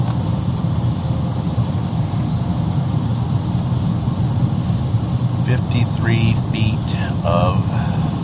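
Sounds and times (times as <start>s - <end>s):
53-foot semi truck engine rumbling: 0.0s - 8.2s
speech: 6.0s - 8.0s.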